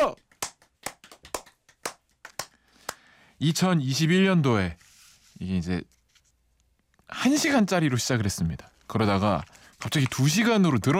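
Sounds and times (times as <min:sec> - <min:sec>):
sharp hand claps: 0:00.0 - 0:03.1
speech: 0:03.4 - 0:04.8, 0:05.4 - 0:06.0, 0:07.1 - 0:10.9.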